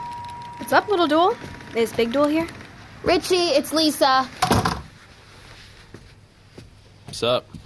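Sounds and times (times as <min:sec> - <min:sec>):
speech: 0:00.7 - 0:04.4, 0:07.2 - 0:07.5
wooden door thudding shut: 0:04.4 - 0:04.9.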